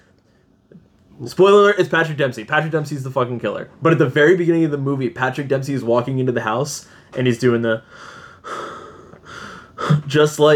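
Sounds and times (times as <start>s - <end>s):
speech: 1.2s - 8.6s, 10.1s - 10.5s
person imitating heavy raspy breathing of a masked killer: 7.9s - 10.2s.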